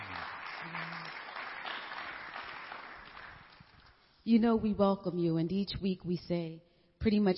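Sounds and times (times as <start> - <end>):
audience applause as a morning hand clap of praise: 0.0 - 3.8
speech: 4.2 - 7.3.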